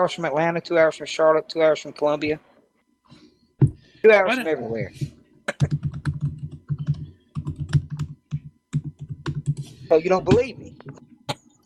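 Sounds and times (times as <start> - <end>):
speech: 0.0 - 2.5, 4.0 - 5.8, 9.9 - 11.0
rapid computer keyboard typing: 5.5 - 9.8.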